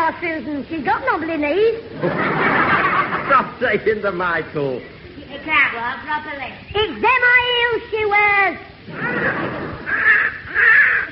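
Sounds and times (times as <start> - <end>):
speech: 0.2 - 10.7
laughter: 1.9 - 4.0, 8.9 - 10.2
young crow with an injured leg cawing: 8.9 - 11.1.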